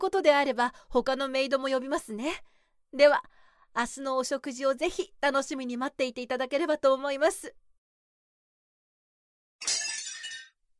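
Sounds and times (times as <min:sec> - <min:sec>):
speech: 0:00.0 - 0:07.6
ceramic tableware breaking with scattered clinking fragments: 0:09.6 - 0:10.6.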